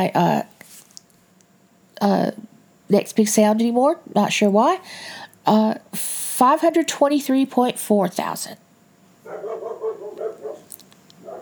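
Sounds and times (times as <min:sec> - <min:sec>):
speech: 0:00.0 - 0:00.5, 0:02.0 - 0:08.6
dog barking: 0:09.2 - 0:11.4.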